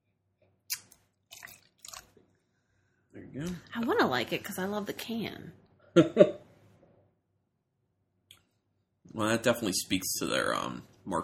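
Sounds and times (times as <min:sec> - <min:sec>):
water pouring into a glass: 0:01.3 - 0:02.2
speech: 0:03.3 - 0:06.4, 0:09.2 - 0:11.2.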